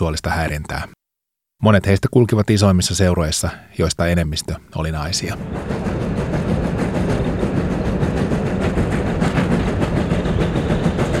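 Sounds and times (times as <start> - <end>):
speech: 0.0 - 1.0, 1.6 - 6.5
train rumbling along the rails heard from inside a carriage: 5.0 - 11.1.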